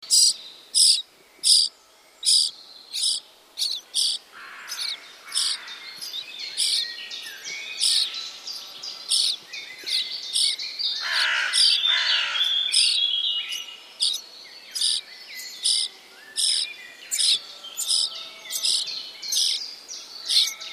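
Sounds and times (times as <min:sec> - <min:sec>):
Sturnus vulgaris chick calling: 0:00.0 - 0:20.7.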